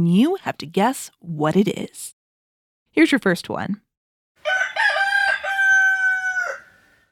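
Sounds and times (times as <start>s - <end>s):
speech: 0.0s - 2.2s, 3.0s - 3.8s
rooster crowing: 4.4s - 7.1s.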